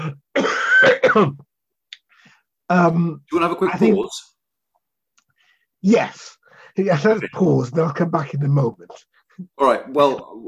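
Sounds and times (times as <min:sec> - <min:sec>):
person clearing throat harshly: 0:00.0 - 0:01.5
person coughing: 0:00.0 - 0:01.5
speech: 0:00.8 - 0:01.5, 0:02.7 - 0:04.3, 0:05.8 - 0:10.4.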